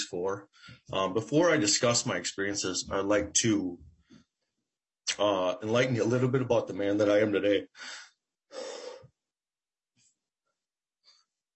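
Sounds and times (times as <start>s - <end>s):
speech: 0.1s - 3.9s, 5.2s - 8.7s
man addressing a committee breathing deeply: 7.8s - 9.1s.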